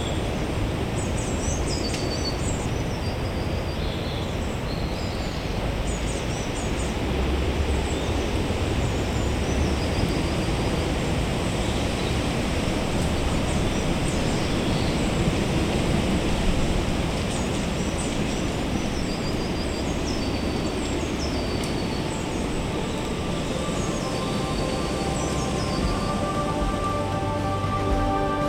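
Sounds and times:
high thin birdsong chirps and trills: 0.0 - 7.0, 7.7 - 28.4
low traffic rumble heard in woodland: 0.0 - 28.4.

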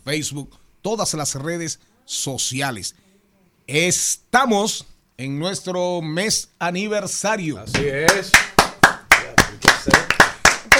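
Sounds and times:
speech: 0.0 - 3.1, 3.7 - 8.5
hands clapping in a small room: 7.7 - 10.7.

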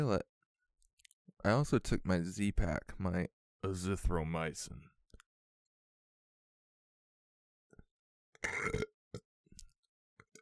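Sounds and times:
speech: 0.0 - 0.3, 1.4 - 4.9, 8.4 - 9.2
loud gurgling burp: 8.4 - 8.9.

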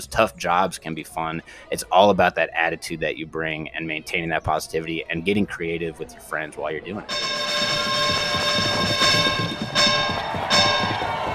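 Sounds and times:
speech: 0.0 - 8.5
electric bell ringing: 7.1 - 11.3
loud clatter: 7.1 - 11.3.

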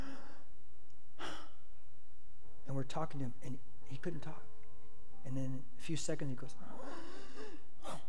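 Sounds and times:
voice imitating labored gasping breaths: 0.0 - 0.5, 6.7 - 8.0
speech: 2.8 - 4.5, 5.2 - 7.1.

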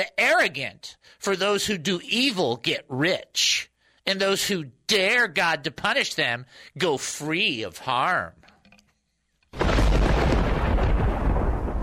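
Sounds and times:
speech: 0.0 - 8.4
loud crack of thunder with heavy rumble: 9.6 - 11.8.

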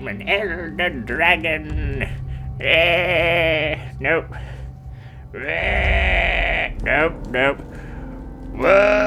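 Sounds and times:
speech: 0.0 - 4.6, 5.3 - 7.8, 8.6 - 9.0
faint low hum: 0.0 - 9.0
person attempting a guttural roar making sheep-like wavering bleats: 0.2 - 4.2, 5.4 - 7.6.

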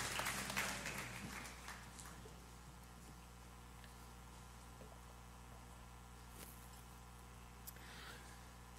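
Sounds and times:
audience applauding at a church service: 0.0 - 2.3
low steady hum: 0.0 - 8.7.

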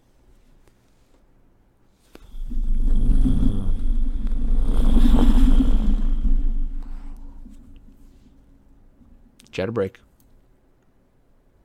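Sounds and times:
person snoring loudly: 2.2 - 7.6
speech: 9.6 - 10.1.

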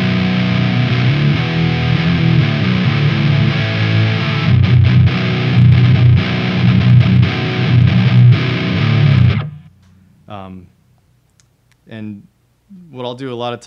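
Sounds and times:
electric guitar chords through OCD-style overdrive distortion pedal: 0.0 - 10.1
speech: 13.0 - 13.6.

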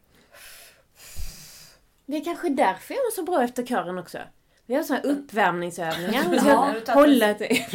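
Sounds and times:
forceful exhale mimicking smoking: 0.2 - 1.8
speech: 2.1 - 7.7
laughter: 5.9 - 7.7.

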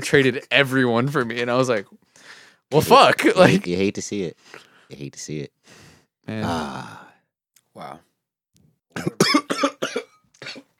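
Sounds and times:
speech: 0.0 - 2.0, 2.7 - 7.1, 7.8 - 8.1
person coughing after something went down the wrong pipe: 8.9 - 10.7.

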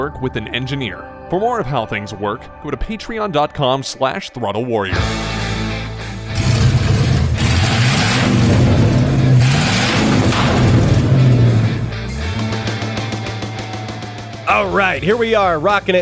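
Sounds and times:
speech: 0.0 - 5.4, 14.6 - 16.0
Volvo 240 car engine with swapped-in LS V8 revving and idling: 5.0 - 14.4.

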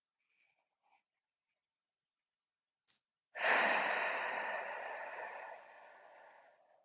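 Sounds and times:
person exhaling slowly into a microphone during box breathing: 3.4 - 6.8.

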